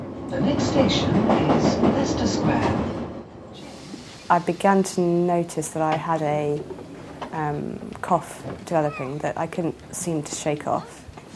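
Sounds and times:
subway train rumbling with low mechanical roar and faint rattling: 0.0 - 11.3
speech: 0.3 - 3.0, 4.3 - 11.3
indistinct voices murmuring: 8.6 - 11.3.

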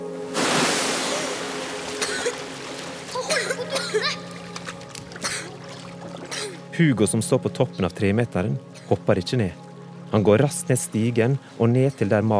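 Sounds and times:
small water splashes and sloshing in a swimming pool: 0.0 - 7.2
splash into water in a swimming pool: 0.3 - 6.6
speech: 3.7 - 4.4, 6.8 - 12.3.

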